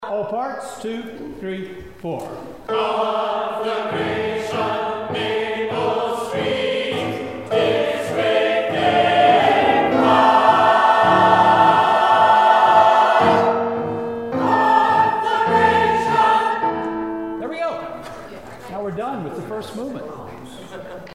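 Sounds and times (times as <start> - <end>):
SATB choir singing: 2.6 - 17.4.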